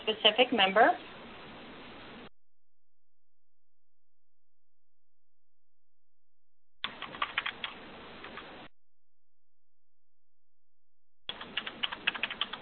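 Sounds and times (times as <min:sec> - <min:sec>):
speech: 0:00.1 - 0:01.2
typing on a computer keyboard: 0:06.8 - 0:08.4, 0:11.3 - 0:12.5.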